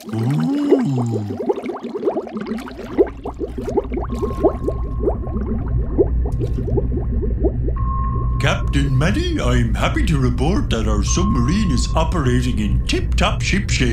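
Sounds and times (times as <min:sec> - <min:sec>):
speech: 0:00.0 - 0:00.2, 0:00.9 - 0:01.6, 0:09.0 - 0:13.9
bubbles gurgling underwater from a squeezed toy: 0:00.0 - 0:08.4
low watery rumble: 0:00.0 - 0:13.9.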